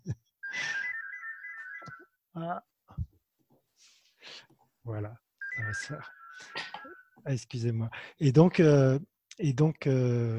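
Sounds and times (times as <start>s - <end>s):
electronic telephone ringtone trill in a home: 0.4s - 2.0s, 5.4s - 7.1s
speech: 2.4s - 2.7s, 4.3s - 6.5s, 7.2s - 10.3s.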